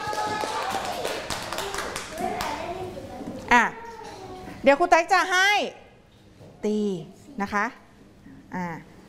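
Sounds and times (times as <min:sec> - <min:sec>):
high-pitched shout: 0:00.0 - 0:01.1
children clapping in a classroom: 0:00.0 - 0:02.8
children chattering: 0:00.0 - 0:04.6
speech: 0:04.6 - 0:05.8, 0:06.6 - 0:07.8, 0:08.5 - 0:08.9.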